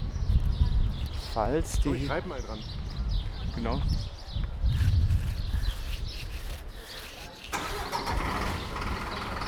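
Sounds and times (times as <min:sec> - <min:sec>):
faint birdsong: 0:00.0 - 0:09.4
speech: 0:01.3 - 0:02.8, 0:03.6 - 0:04.2
truck engine starting and idling beside a preserved section of old city wall: 0:07.5 - 0:09.4.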